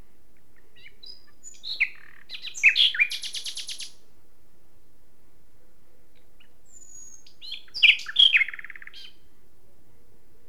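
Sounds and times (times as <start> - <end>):
common nightingale Luscinia megarhynchos singing: 0.4 - 4.0, 6.2 - 9.2.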